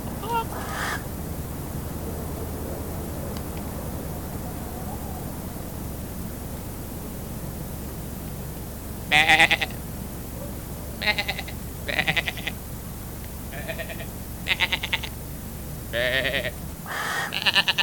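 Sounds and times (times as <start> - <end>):
low background hum: 0.0 - 17.8
sheep bleating: 0.2 - 1.0, 9.1 - 9.8, 11.0 - 12.6, 13.5 - 15.2, 15.9 - 17.8.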